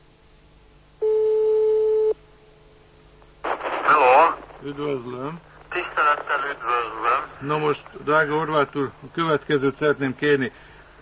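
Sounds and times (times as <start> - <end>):
telephone ringing tone on the line: 1.0 - 2.2
faint telephone line hiss: 1.6 - 11.0
speech: 4.6 - 10.7.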